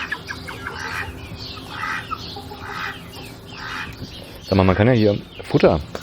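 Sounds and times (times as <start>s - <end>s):
steady outdoor hum: 0.0s - 6.0s
young hens clucking and chirping: 0.0s - 6.0s
speech: 4.5s - 6.0s.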